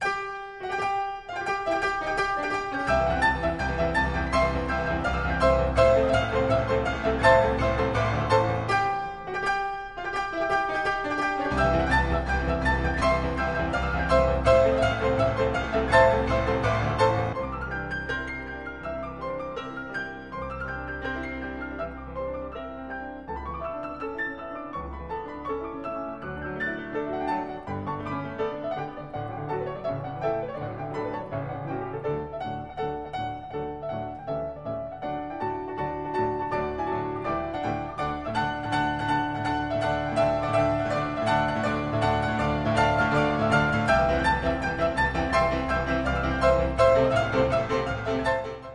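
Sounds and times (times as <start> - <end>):
lively piano piece for four hands in C major: 0.0 - 48.7.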